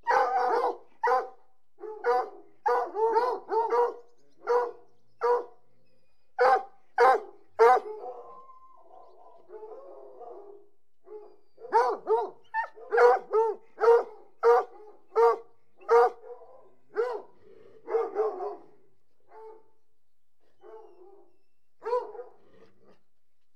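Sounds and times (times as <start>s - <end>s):
hunting hounds yelping: 0.0s - 5.5s, 6.4s - 10.4s, 11.1s - 16.4s.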